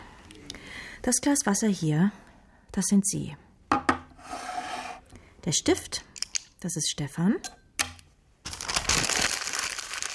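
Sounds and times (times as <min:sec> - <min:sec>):
speech: 0:01.0 - 0:03.4, 0:05.4 - 0:07.6
paper being crumpled into a ball: 0:08.4 - 0:10.1.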